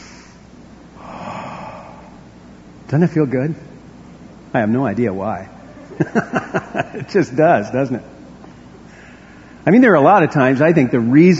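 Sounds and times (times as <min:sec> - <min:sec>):
group of people taking a deep breath in together: 0:00.0 - 0:00.4, 0:01.0 - 0:02.3, 0:08.9 - 0:09.6
speech: 0:02.9 - 0:03.8, 0:04.5 - 0:08.1, 0:09.6 - 0:11.3
laughter: 0:05.7 - 0:07.4.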